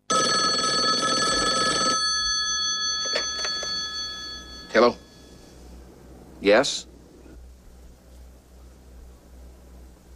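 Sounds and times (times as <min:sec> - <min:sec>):
old-fashioned telephone bell ringing with a metallic trill: 0:00.0 - 0:05.2
faint electronic hum: 0:00.0 - 0:10.1
speech: 0:04.8 - 0:05.0, 0:06.4 - 0:06.9.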